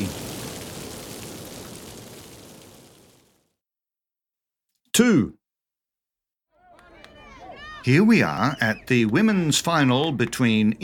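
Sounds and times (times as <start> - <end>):
steady rain falling: 0.0 - 3.6
speech: 5.0 - 5.4, 7.8 - 10.8.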